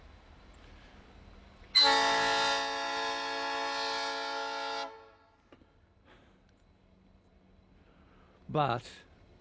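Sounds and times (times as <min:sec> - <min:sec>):
rail motor train horn blast: 0:01.8 - 0:05.4
speech: 0:08.5 - 0:09.1.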